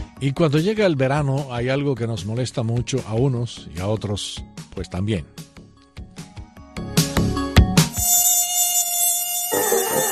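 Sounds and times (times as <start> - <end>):
speech: 0.2 - 5.5
mosquito whining: 7.8 - 10.1.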